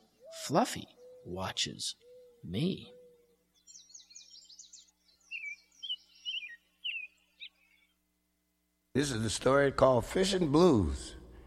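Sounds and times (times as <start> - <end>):
birds chirping around a bird feeder: 0.0 - 8.1
speech: 0.5 - 3.0, 9.0 - 11.2.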